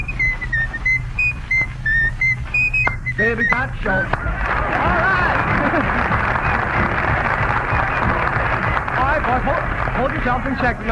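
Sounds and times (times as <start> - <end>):
person whistling a tune: 0.0 - 3.7
speech: 3.2 - 4.9, 9.3 - 10.9
laughter: 4.2 - 10.4.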